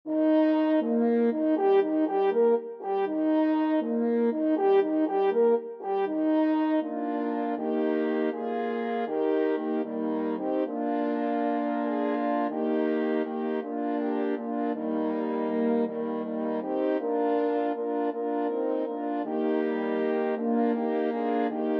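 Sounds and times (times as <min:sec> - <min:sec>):
equestrian hunting horn fanfare: 0:00.1 - 0:21.7.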